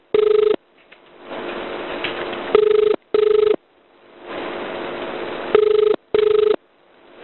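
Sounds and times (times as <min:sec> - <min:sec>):
telephone ringback tone on an emergency call to Queensland: 0:00.0 - 0:00.6, 0:02.5 - 0:03.6, 0:05.5 - 0:06.6
hiss of telephone line noise: 0:00.0 - 0:07.2.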